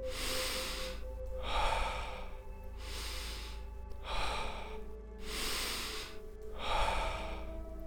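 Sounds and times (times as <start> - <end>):
deep steady breathing close to the microphone: 0.0 - 7.8.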